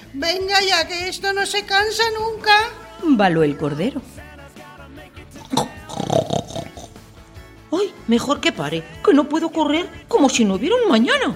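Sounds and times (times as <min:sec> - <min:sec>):
speech: 0:00.1 - 0:04.3, 0:08.1 - 0:11.3
voice imitating a pig's grunt during a children's story reading: 0:05.4 - 0:07.1.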